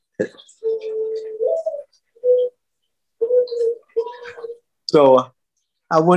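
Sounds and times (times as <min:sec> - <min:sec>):
bird clock recorded dove cooing: 0:00.0 - 0:02.6, 0:03.2 - 0:04.7
speech: 0:00.2 - 0:00.9, 0:04.9 - 0:05.3, 0:05.9 - 0:06.1.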